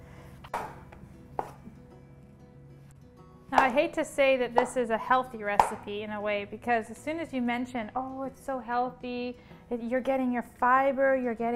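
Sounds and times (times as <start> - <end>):
knife chopping mushrooms on a cutting board: 0.5 - 1.8, 5.6 - 5.8
speech: 3.5 - 11.5.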